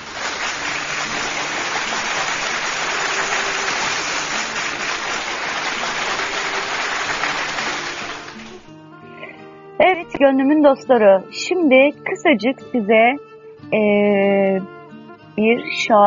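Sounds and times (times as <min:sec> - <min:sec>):
crowd applauding with dense clapping: 0:00.0 - 0:08.7
speech: 0:09.9 - 0:14.8, 0:15.4 - 0:16.0.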